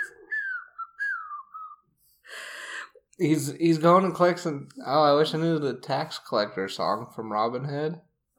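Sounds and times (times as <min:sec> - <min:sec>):
person whistling a tune: 0:00.0 - 0:01.9
speech: 0:03.2 - 0:08.1.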